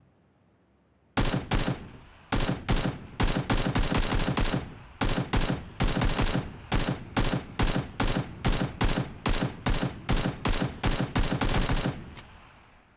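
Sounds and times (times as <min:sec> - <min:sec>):
AKM rifle single shot: 0:01.2 - 0:12.8.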